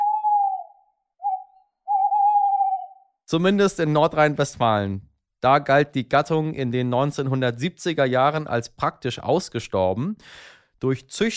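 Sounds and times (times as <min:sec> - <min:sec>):
Eurasian eagle-owl hooting: 0:00.0 - 0:03.2
speech: 0:03.3 - 0:11.3.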